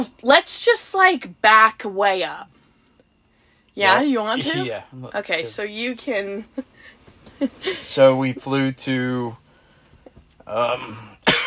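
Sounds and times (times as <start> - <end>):
speech: 0.0 - 2.6, 3.8 - 9.4, 10.5 - 11.1
person coughing: 10.7 - 11.4.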